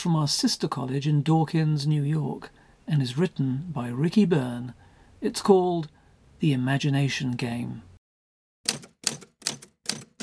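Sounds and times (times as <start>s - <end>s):
speech: 0.0s - 7.9s
typewriter keys clacking: 8.7s - 10.2s.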